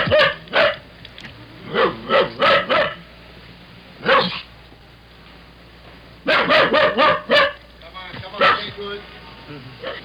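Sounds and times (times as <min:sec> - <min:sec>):
dog barking inside a locked car: 0:00.0 - 0:00.8, 0:01.7 - 0:03.0, 0:04.0 - 0:04.5, 0:06.2 - 0:07.6, 0:08.4 - 0:08.8, 0:09.8 - 0:10.0
low steady hum: 0:00.0 - 0:10.0.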